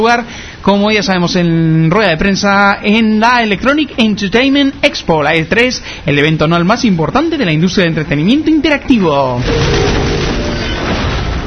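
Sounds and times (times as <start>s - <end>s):
speech: 0.0s - 10.0s
video game gunfire: 9.4s - 11.4s.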